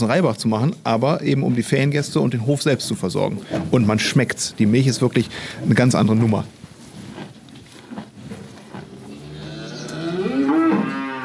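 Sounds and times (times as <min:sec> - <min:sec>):
speech: 0:00.0 - 0:06.6
impatient cows mooing inside a barn on a small family farm: 0:08.7 - 0:11.2.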